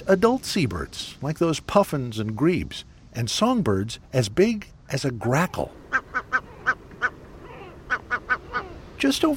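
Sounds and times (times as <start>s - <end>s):
speech: 0.1s - 6.0s, 9.0s - 9.3s
great black-backed gull calling: 5.4s - 9.0s.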